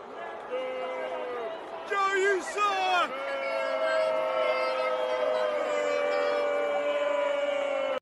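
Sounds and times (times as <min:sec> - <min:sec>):
large crowd booing: 0:00.0 - 0:08.0.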